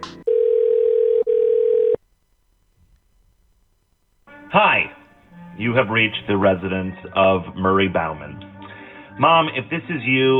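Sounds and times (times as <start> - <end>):
telephone ringing tone on a line: 0.0 - 2.0
speech: 4.5 - 5.0, 5.6 - 8.5, 9.2 - 10.3.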